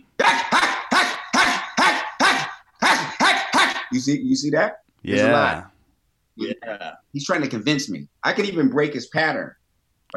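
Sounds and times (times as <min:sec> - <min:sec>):
dog barking: 0:00.2 - 0:03.9
speech: 0:03.9 - 0:05.7, 0:06.4 - 0:10.1.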